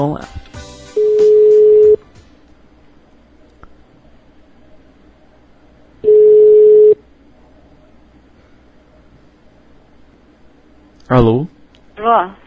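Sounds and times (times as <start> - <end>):
speech: 0.0 - 0.4, 11.1 - 11.5
long steady telephone tones during an outgoing phone call: 1.0 - 2.0, 6.0 - 7.0.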